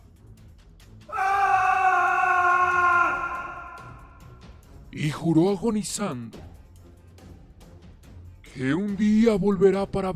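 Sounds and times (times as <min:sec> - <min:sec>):
man screaming in terror and rage: 0:01.1 - 0:04.4
speech: 0:05.0 - 0:06.4, 0:08.6 - 0:10.1.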